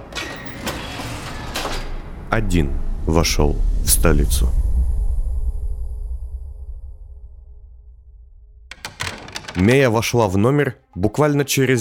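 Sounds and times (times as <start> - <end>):
door closing: 0.0 - 2.2, 8.7 - 10.0
continuous mechanical rumble: 0.7 - 9.9
speech: 2.3 - 4.6, 9.6 - 11.8
short clattering knocks: 8.7 - 10.0.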